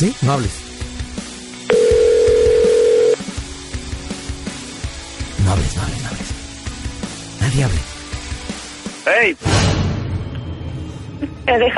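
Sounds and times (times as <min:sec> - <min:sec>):
speech: 0:00.0 - 0:00.7, 0:05.5 - 0:06.4, 0:07.5 - 0:07.9, 0:09.0 - 0:09.8, 0:11.5 - 0:11.7
telephone ringback tone while a call is placed: 0:01.7 - 0:03.2.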